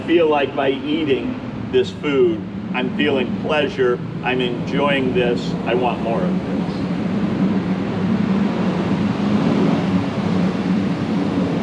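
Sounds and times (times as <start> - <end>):
large fire truck engine rumble passing on Main Street: 0.0 - 11.6
speech: 0.1 - 6.8.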